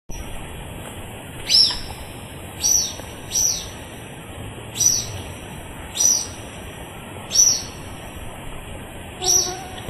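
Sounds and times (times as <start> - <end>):
faint steady background hiss: 0.1 - 9.8
social flycatcher giving sharp high clipped calls at Reserva Surucua: 9.2 - 9.8.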